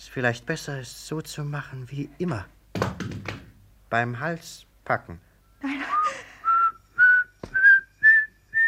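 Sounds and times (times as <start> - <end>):
speech: 0.1 - 3.3, 3.9 - 5.9
person whistling a short tune: 5.8 - 8.6.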